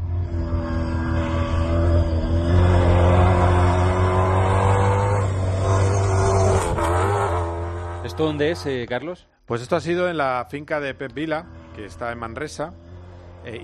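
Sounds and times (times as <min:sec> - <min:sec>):
Toyota Hilux rally car engine roaring at full speed on a farm in Manresa: 0:00.0 - 0:09.0, 0:09.6 - 0:13.6
speech: 0:08.2 - 0:12.8, 0:13.4 - 0:13.6.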